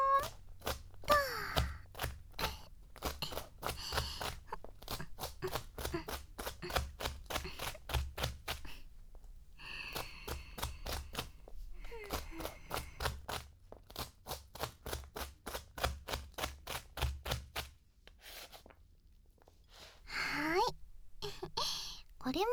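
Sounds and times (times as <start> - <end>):
faint squeaky sound: 0.0 - 6.8, 20.0 - 22.5
knife chopping bell pepper on cutting board: 0.0 - 18.7
speech: 22.3 - 22.5.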